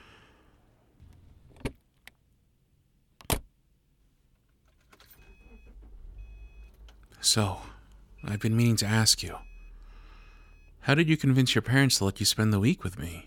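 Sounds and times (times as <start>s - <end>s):
car engine starting up and settling into a low steady idle: 4.9s - 10.1s
speech: 7.2s - 9.5s, 10.8s - 13.2s.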